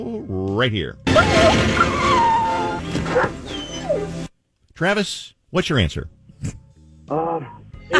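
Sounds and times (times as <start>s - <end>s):
speech: 0.0s - 3.5s, 4.8s - 7.9s
dog whining and yipping: 1.2s - 4.3s.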